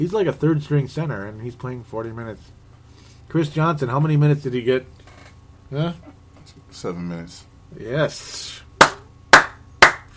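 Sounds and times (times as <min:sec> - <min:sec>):
speech: 0:00.0 - 0:02.6, 0:03.3 - 0:05.0, 0:05.7 - 0:06.1, 0:06.7 - 0:08.6
sharp hand claps: 0:08.8 - 0:10.1.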